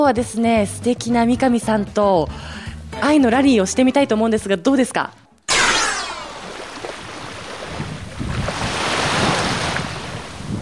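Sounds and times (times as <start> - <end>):
speech: 0.0 - 5.2
ocean waves breaking at beach shoreline: 6.2 - 10.6
wind noise buffeting the microphone: 6.8 - 10.6.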